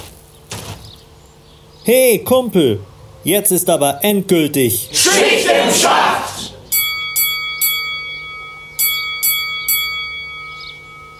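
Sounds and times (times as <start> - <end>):
speech: 1.8 - 6.3
bright metallic bell ringing: 6.7 - 11.1.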